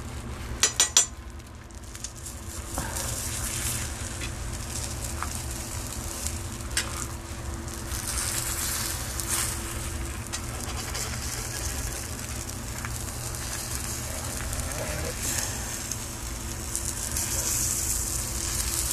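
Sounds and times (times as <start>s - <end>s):
egg sizzling in a frying pan: 0.0s - 18.9s
utensil scraping against a frying pan: 10.4s - 12.1s.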